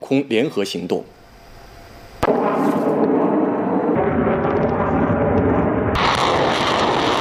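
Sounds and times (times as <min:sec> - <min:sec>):
speech: 0:00.1 - 0:01.2
artillery and air strike explosions during a military exercise: 0:02.2 - 0:07.2
heavy roaring rumble of long-range air and ground fire strikes: 0:03.8 - 0:07.2.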